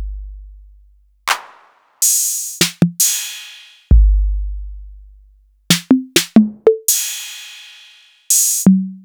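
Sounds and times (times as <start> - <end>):
sliced TR-808 drum machine hits: 1.3 - 4.0, 5.7 - 8.7.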